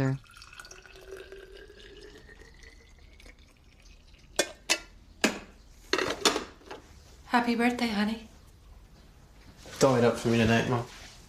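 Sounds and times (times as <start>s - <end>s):
coffee pouring into a thermos: 0.2s - 4.7s
speech: 7.3s - 8.3s, 9.8s - 11.0s.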